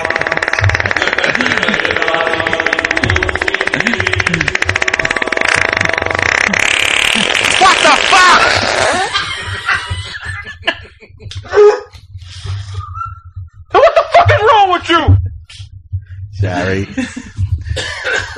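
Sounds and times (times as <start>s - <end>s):
laughter: 0.0s - 4.6s, 6.5s - 11.7s, 13.7s - 14.4s, 16.6s - 18.3s
voice making a flapping fart imitation with the lips: 0.0s - 9.2s.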